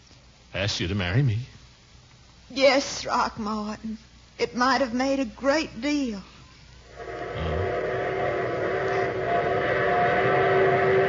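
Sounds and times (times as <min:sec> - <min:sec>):
speech: 0:00.6 - 0:01.6, 0:02.5 - 0:06.3
train rumbling: 0:06.9 - 0:11.0.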